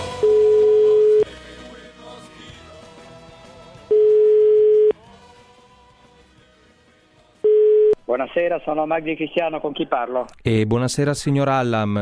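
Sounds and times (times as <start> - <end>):
telephone ringing tone on a line before a call is answered: 0.2 - 1.3, 3.9 - 4.9, 7.5 - 7.9
speech: 8.1 - 11.9.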